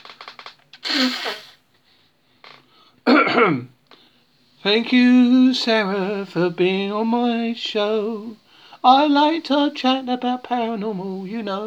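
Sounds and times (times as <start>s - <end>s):
small clicks: 0.0s - 0.9s
nose blowing: 0.8s - 1.6s
faint sniff: 0.8s - 2.2s
speech: 3.4s - 3.7s, 4.6s - 11.6s.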